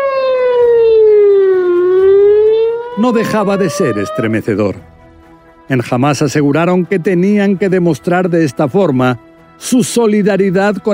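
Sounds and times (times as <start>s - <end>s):
air-raid alarm siren wailing in Jerusalem during a rocket bombardment from Gaza: 0.0s - 5.4s
speech: 3.0s - 4.9s, 5.7s - 10.9s.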